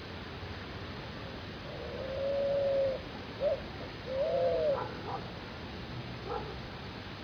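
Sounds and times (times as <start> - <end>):
faint background noise: 0.0 - 7.2
spot-winged pigeon call in Arredondo Córdoba: 1.7 - 5.2.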